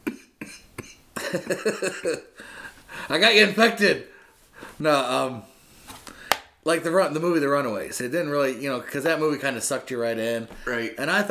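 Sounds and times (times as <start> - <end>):
person coughing: 0.0 - 2.3
speech: 1.3 - 4.2, 4.8 - 5.5, 6.6 - 11.2.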